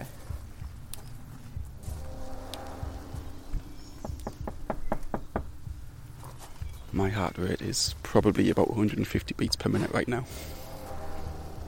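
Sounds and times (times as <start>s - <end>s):
low outdoor rumble: 0.0s - 11.6s
firm knocks on a front door: 4.0s - 5.8s
speech: 7.0s - 10.6s.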